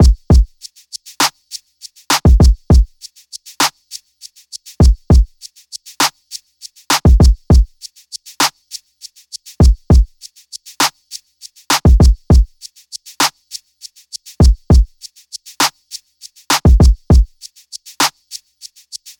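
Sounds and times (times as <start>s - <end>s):
drum loop: 0.0s - 0.5s, 2.1s - 2.9s, 4.8s - 5.4s, 6.9s - 7.8s, 9.6s - 10.2s, 11.7s - 12.6s, 14.4s - 15.0s, 16.5s - 17.4s.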